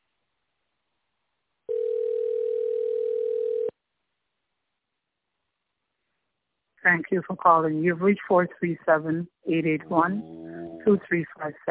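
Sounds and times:
telephone ringing tone of outgoing call: 1.7s - 3.7s
speech: 6.8s - 11.6s.

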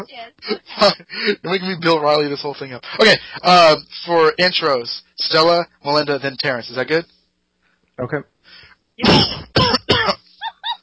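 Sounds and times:
speech: 0.0s - 7.2s, 8.0s - 9.5s
person clearing throat harshly: 9.0s - 10.2s.

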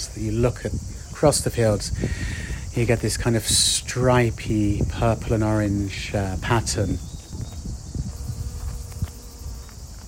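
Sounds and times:
constant hiss of insects: 0.0s - 10.0s
soft rustling wind: 0.0s - 10.0s
speech: 0.1s - 7.1s
bees buzzing in a lavender field: 6.4s - 10.0s.

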